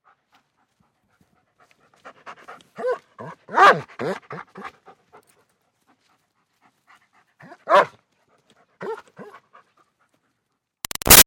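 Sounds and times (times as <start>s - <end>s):
German Shepherd dog panting: 0.1s - 10.5s
German Shepherd dog barking: 2.8s - 4.2s, 7.6s - 8.0s.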